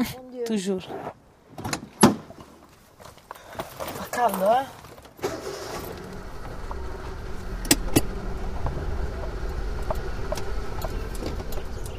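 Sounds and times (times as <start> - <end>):
speech: 0.0 - 1.8, 4.2 - 4.8
low rumble of engines from a queue of new cars idling and creeping along: 5.2 - 11.9.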